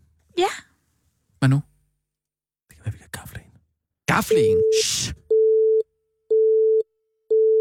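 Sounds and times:
speech: 1.4 - 1.7, 4.2 - 5.2
telephone busy signal after a call attempt: 4.3 - 7.5.

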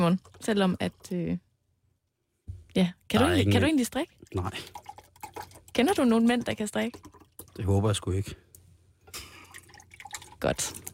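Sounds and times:
speech: 0.0 - 1.5, 2.8 - 8.4, 10.4 - 10.9
juice pouring into a glass: 3.2 - 8.4, 9.2 - 10.9.

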